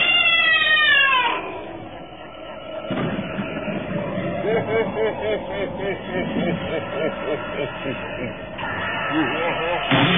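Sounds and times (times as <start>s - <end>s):
cat giving loud falling yowl and pulsing moaning: 0.0s - 1.8s
laughter: 3.2s - 10.0s.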